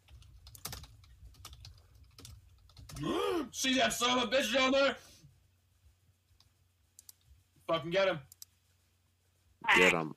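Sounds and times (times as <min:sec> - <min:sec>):
typing on a computer keyboard during a computer game: 0:00.0 - 0:03.0
speech: 0:03.0 - 0:05.1, 0:07.7 - 0:08.3, 0:09.8 - 0:10.1.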